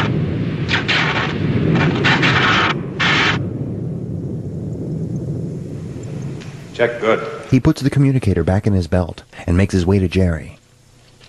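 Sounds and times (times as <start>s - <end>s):
blaster turrets firing blue energy pulses from four ports: 0.0s - 3.6s
steady low rumble: 0.0s - 11.2s
speech: 6.8s - 10.6s.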